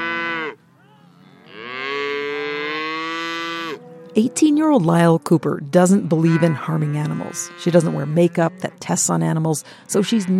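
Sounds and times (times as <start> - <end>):
Angus cattle mooing on a farm: 0.0 - 10.3
speech: 4.2 - 10.3.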